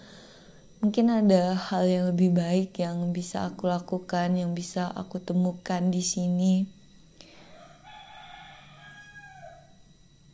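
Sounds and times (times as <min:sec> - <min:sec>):
steady outdoor hum: 0:00.0 - 0:10.3
speech: 0:00.8 - 0:06.8
rooster crowing: 0:07.3 - 0:10.0.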